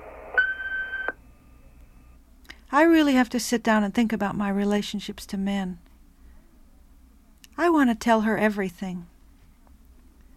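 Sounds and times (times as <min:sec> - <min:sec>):
answering machine beep: 0:00.4 - 0:01.2
speech: 0:02.7 - 0:05.8, 0:07.8 - 0:09.1.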